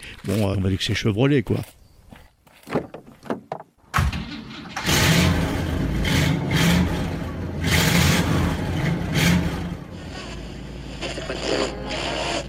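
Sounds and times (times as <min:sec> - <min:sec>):
speech: 0:00.2 - 0:01.8
big car engine starting, revving and idling: 0:04.7 - 0:12.4.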